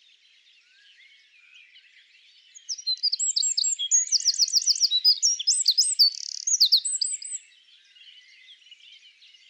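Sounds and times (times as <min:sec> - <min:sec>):
Eurasian wren Troglodytes troglodytes song with rapid rattling trills: 0:02.5 - 0:09.4.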